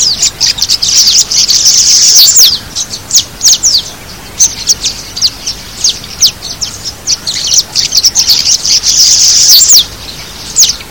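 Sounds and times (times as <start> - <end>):
small blue swallow: 0.0 - 10.8.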